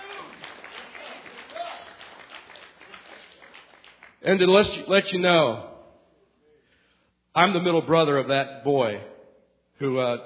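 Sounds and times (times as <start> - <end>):
audience clapping: 0.0 - 4.4
speech: 4.2 - 5.7, 7.4 - 9.1, 9.8 - 10.2.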